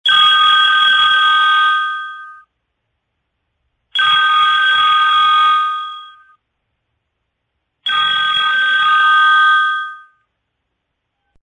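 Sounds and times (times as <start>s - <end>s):
house phone ringtones: 0.1s - 2.5s, 4.0s - 6.4s, 7.8s - 10.3s.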